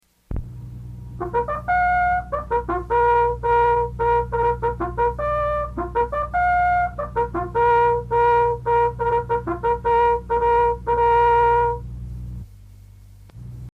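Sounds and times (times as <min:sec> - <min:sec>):
bugle call: 0:01.2 - 0:11.8.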